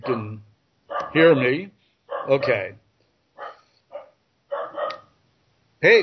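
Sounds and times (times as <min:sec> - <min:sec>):
dogs barking: 0:00.0 - 0:00.3, 0:00.9 - 0:02.8, 0:03.4 - 0:05.2
speech: 0:01.1 - 0:02.8, 0:05.8 - 0:06.0.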